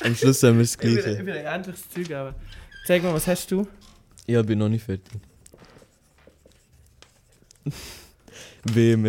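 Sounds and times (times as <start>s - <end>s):
speech: 0.0s - 5.3s, 7.6s - 8.0s, 8.6s - 9.0s
pen or pencil writing on paper: 5.2s - 7.6s.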